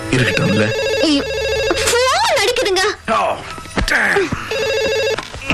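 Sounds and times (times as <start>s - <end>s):
telephone ringing: 0.1s - 3.0s, 4.5s - 5.4s.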